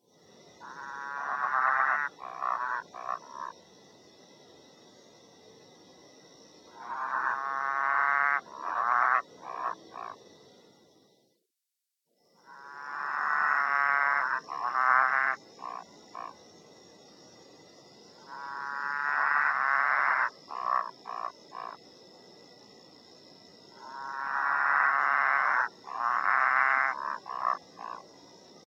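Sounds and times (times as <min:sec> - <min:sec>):
frog: 0:00.1 - 0:11.1, 0:12.2 - 0:28.6.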